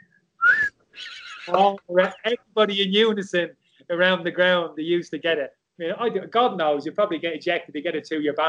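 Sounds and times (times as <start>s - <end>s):
person whistling a rising wolf-whistle-like note: 0.4s - 0.7s
speech: 1.5s - 8.4s.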